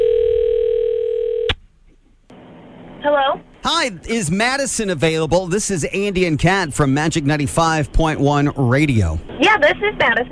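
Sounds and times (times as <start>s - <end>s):
telephone dial tone as a call is placed: 0.0s - 1.6s
speech: 3.0s - 10.2s.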